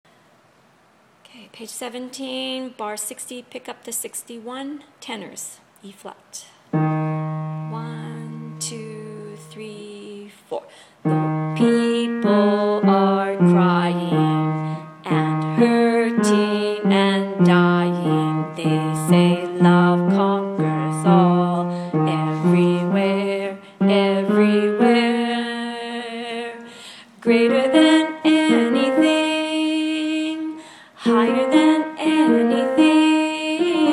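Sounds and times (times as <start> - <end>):
tenors singing: 11.1 - 30.1, 31.0 - 33.9.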